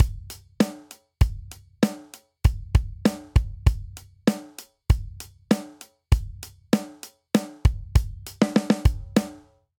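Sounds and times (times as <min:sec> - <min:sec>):
straight hip hop outro beat: 0:00.0 - 0:09.5.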